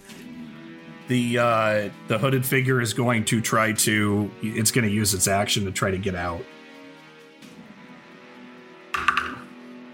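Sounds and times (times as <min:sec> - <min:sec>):
speech: 0:01.1 - 0:06.6
die clattering in a dice tray: 0:09.0 - 0:09.5.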